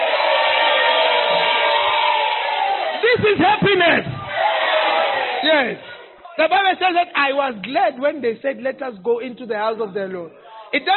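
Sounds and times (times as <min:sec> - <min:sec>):
audience cheering during a sermon: 0:00.0 - 0:05.8
speech: 0:03.4 - 0:04.2, 0:05.4 - 0:10.9.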